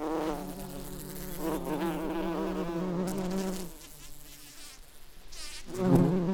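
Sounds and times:
bumblebee buzzing: 0.0 - 6.3.

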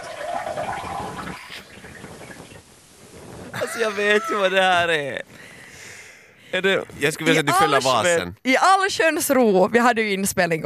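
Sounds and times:
toilet flushing: 0.0 - 2.4
water running and trickling as the toilet tank refills: 0.0 - 3.6
speech: 3.8 - 5.5, 6.5 - 10.6.

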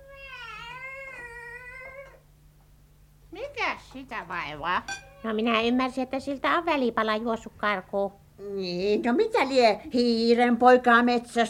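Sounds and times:
cat yowling: 0.0 - 2.2
low steady hum: 0.0 - 11.4
speech: 3.6 - 11.4.

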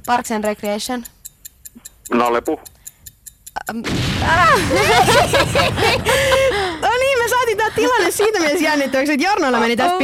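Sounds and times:
speech: 0.0 - 1.2, 1.8 - 2.8, 3.7 - 6.6, 7.6 - 10.0
sharp clicks: 0.0 - 3.9
explosion sound effect: 3.8 - 6.4
people crying out excitedly: 4.2 - 8.8
laughter: 4.2 - 10.0.

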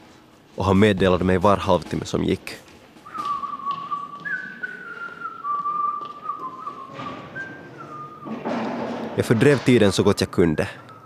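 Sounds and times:
speech: 0.6 - 2.7, 9.2 - 10.8
person whistling an opera melody: 3.0 - 8.4, 10.9 - 11.0.

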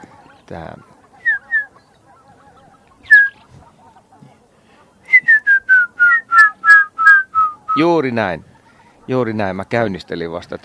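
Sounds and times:
faint noise: 0.0 - 10.6
speech: 0.5 - 0.9, 7.8 - 8.5, 9.1 - 10.6
grey-headed woodpecker descending whistled call: 1.2 - 1.7, 3.1 - 3.4, 5.1 - 7.8.

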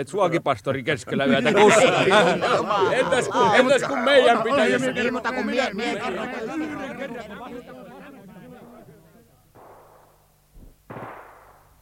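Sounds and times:
speech: 0.0 - 8.0
voices chattering: 0.0 - 9.9
laughter: 0.8 - 9.5
distant gunfire bursts with tails: 9.5 - 11.8.

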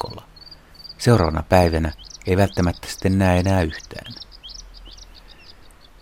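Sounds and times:
bluethroat singing: 0.0 - 6.0
speech: 1.0 - 4.2.

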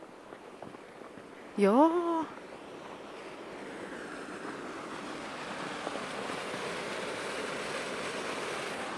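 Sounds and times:
speech: 1.6 - 2.4
3-metre natural waterfall rushing under ice cover in Helsinki Finland: 3.1 - 8.9.

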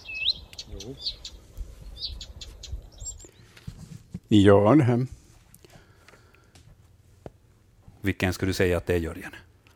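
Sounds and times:
Blyth's reed warbler singing in berry bushes: 0.0 - 3.6
speech: 0.8 - 1.4, 4.3 - 5.2, 8.1 - 9.5.

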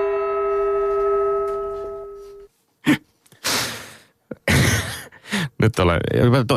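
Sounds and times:
struck gong ringing: 0.0 - 2.5
loud breathy exhalations: 2.8 - 4.2
speech: 5.6 - 6.5.

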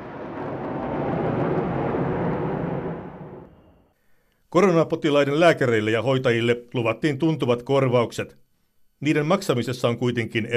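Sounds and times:
fighter jets flying over Moscow in a flyover: 0.0 - 3.9
speech: 4.5 - 8.4, 9.0 - 10.5.

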